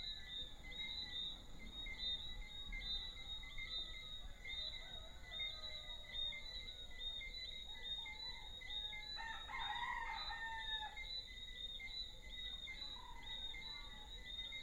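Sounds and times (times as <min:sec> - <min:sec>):
small frogs chirping in chorus in Deshaies Guadeloupe: 0:00.0 - 0:14.6
rooster crowing hoarsely in Deshaies Guadeloupe: 0:09.2 - 0:11.0.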